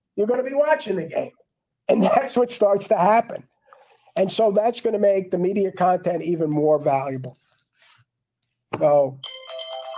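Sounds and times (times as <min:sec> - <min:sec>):
speech: 0:00.2 - 0:03.5, 0:04.2 - 0:07.4, 0:08.8 - 0:09.3
mobile phone ringtone melody of steady electronic tones: 0:09.2 - 0:09.9.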